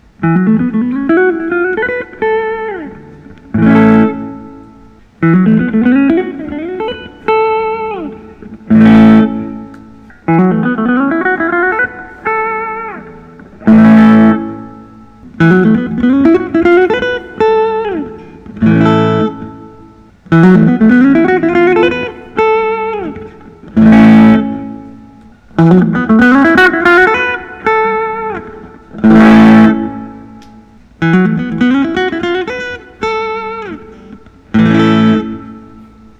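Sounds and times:
electric guitar: 0.0 - 36.1.

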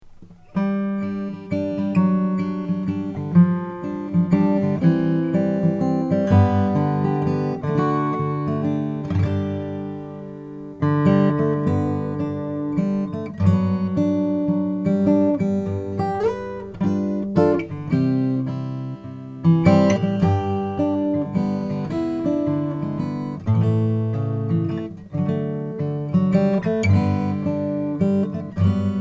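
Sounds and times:
Froggy Bottom P12 Deluxe guitar of Bastogne walnut: 0.0 - 28.9.

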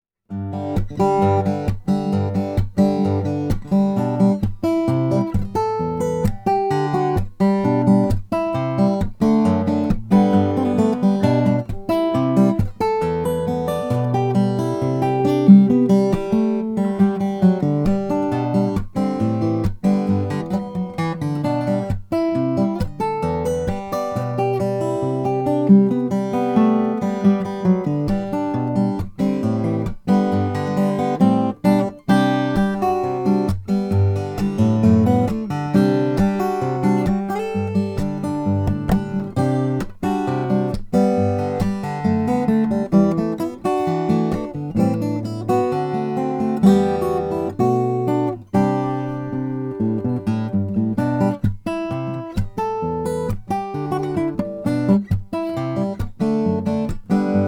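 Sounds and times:
koa acoustic guitar: 0.2 - 57.4.

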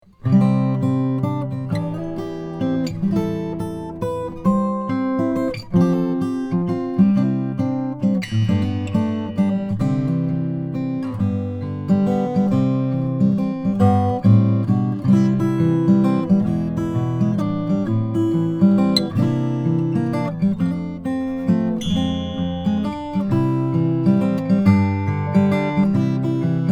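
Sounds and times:
Froggy Bottom M Deluxe Guatemalan rosewood guitar: 0.0 - 26.7.

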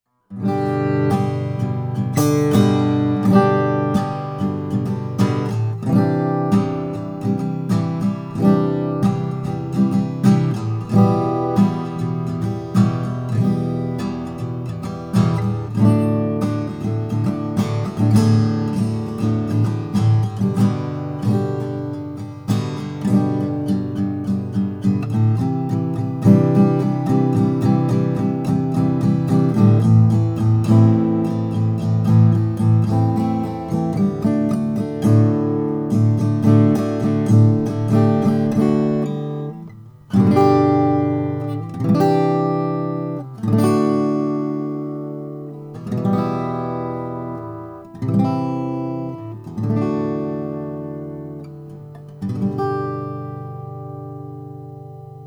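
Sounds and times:
left-handed cutaway acoustic guitar with Indian rosewood body: 0.2 - 55.2.

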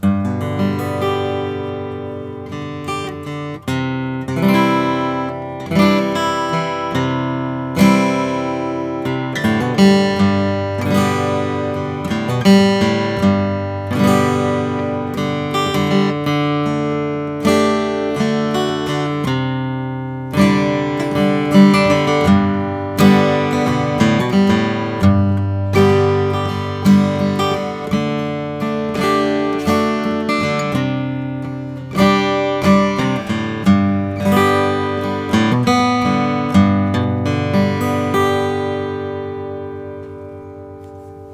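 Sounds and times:
R Taylor Style 1 alpine spruce natural guitar: 0.0 - 41.3.

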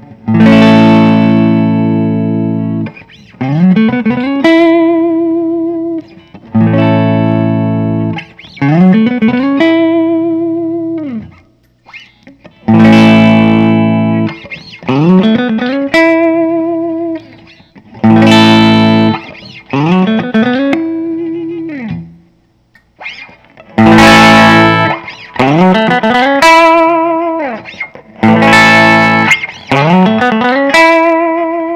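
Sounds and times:
Gibson custom chambered 58 Les Paul electric guitar: 0.0 - 31.7.

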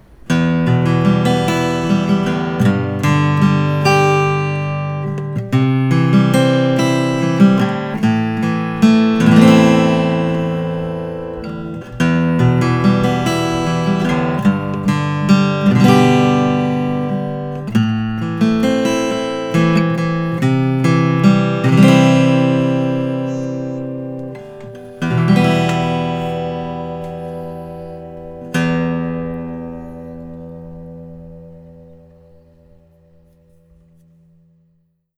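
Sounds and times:
ziricote and alpine spruce acoustic guitar: 0.0 - 35.1.

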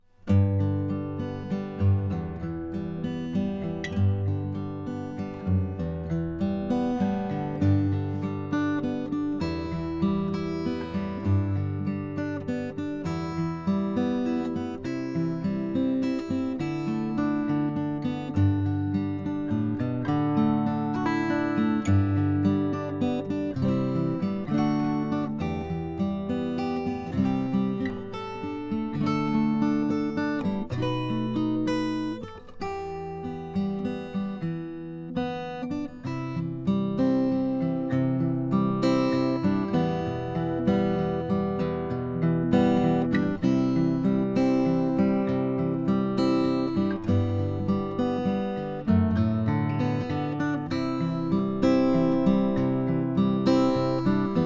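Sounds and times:
Collings OM1A sunburst guitar: 0.0 - 54.4.

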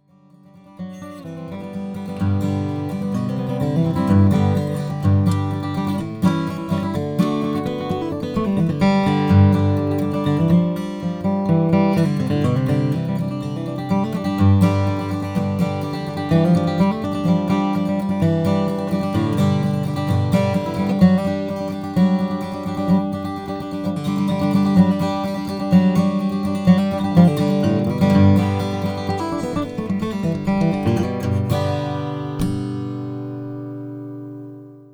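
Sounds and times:
Collings D2HG acoustic guitar with German spruce top: 0.0 - 34.9.

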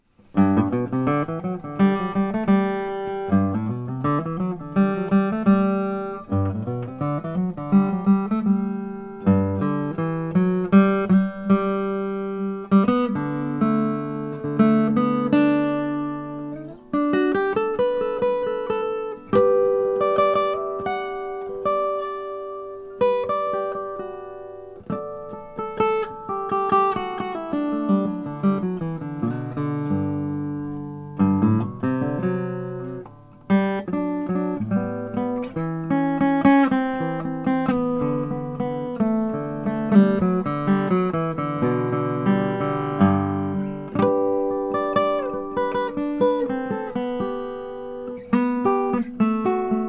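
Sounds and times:
Gibson LG 2 sunburst guitar: 0.0 - 49.8.

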